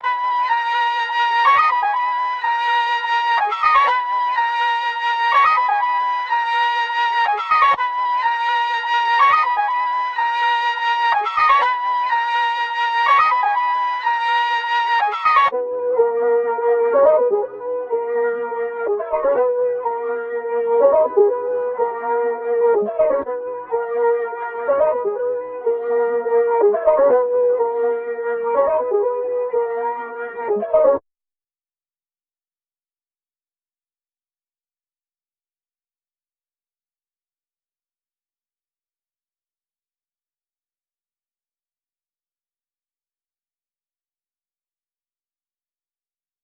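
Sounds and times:
flute melody loop in G sharp minor: 0.0s - 31.0s.

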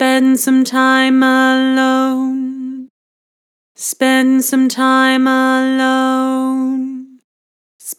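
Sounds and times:
Harmor vocals with vibrato: 0.0s - 2.9s, 3.8s - 7.2s.

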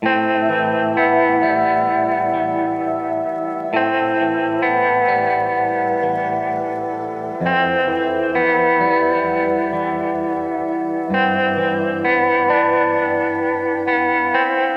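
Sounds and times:
sad melody loop in A minor: 0.0s - 14.7s.

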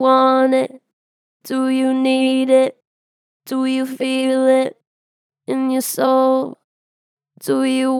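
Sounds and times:
strong flat-pitched singing vocals: 0.0s - 0.9s, 1.5s - 2.8s, 3.5s - 4.8s, 5.5s - 6.6s, 7.4s - 7.9s.

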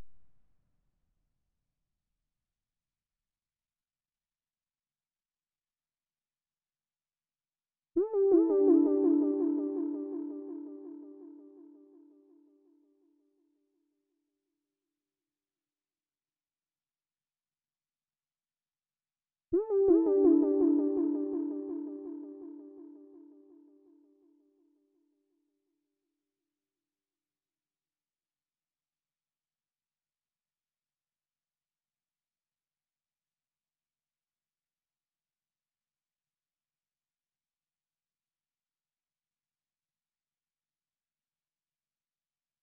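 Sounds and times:
A minor synth accent RnB melody loop: 8.0s - 11.7s, 19.6s - 23.4s.

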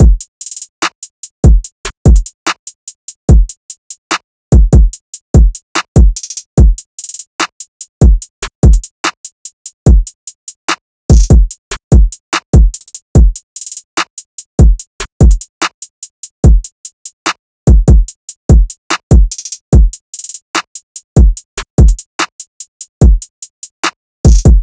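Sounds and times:
drum loop: 0.0s - 0.2s, 1.4s - 2.6s, 3.3s - 3.5s, 4.5s - 9.2s, 9.9s - 10.1s, 11.1s - 15.7s, 16.4s - 16.7s, 17.7s - 22.3s, 23.0s - 23.3s, 24.2s - 24.6s.

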